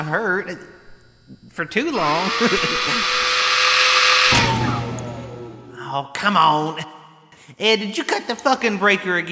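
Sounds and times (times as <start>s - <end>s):
speech: 0.0s - 3.4s, 5.9s - 9.3s
drill motor winding down: 1.7s - 5.9s
electric power drill whirring at a workbench: 1.9s - 5.8s.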